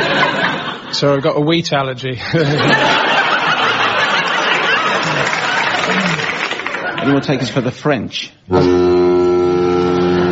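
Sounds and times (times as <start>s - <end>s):
laughter: 0.0s - 0.9s, 2.2s - 7.7s
speech: 0.9s - 3.2s, 7.0s - 9.2s
loud sustained foghorn-like horn blast: 8.5s - 10.3s.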